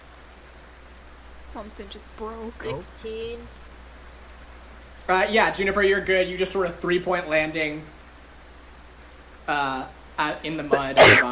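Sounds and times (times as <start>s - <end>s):
speech: 1.5s - 3.6s, 5.1s - 8.0s, 9.5s - 11.3s
person sneezing: 10.7s - 11.3s.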